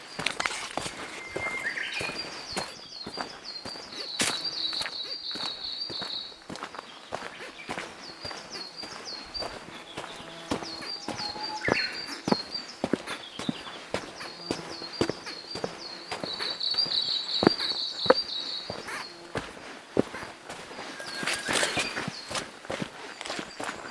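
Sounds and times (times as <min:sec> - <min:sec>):
trekking footsteps: 0:00.0 - 0:23.9.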